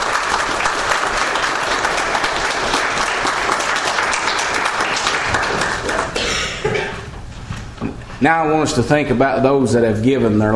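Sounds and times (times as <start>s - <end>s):
large audience applause for military veterans: 0.0s - 6.6s
speech: 8.2s - 10.5s.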